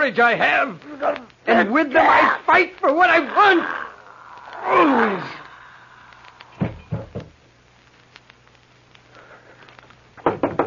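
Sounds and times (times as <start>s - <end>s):
speech: 0.0s - 3.8s, 4.6s - 5.4s
firm knocking on a door: 6.6s - 7.4s, 10.2s - 10.6s.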